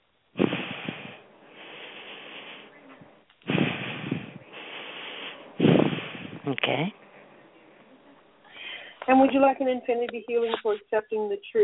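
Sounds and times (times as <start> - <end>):
slow deep breaths during a guided exercise: 0.4 - 6.5, 8.4 - 9.1
speech: 6.5 - 7.0, 9.1 - 11.6.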